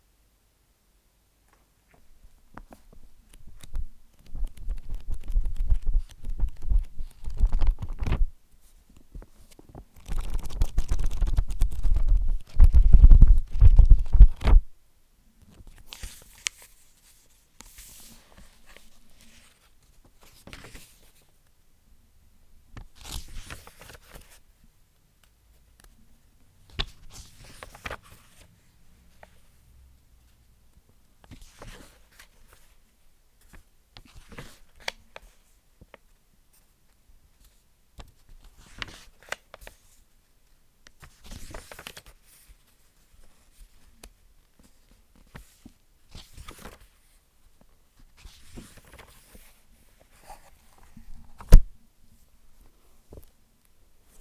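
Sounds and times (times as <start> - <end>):
old book pages: 1.9 - 14.7, 15.5 - 21.3, 22.8 - 24.4, 26.7 - 29.5, 31.2 - 32.8, 33.4 - 36.7, 37.4 - 40.0, 40.9 - 51.7.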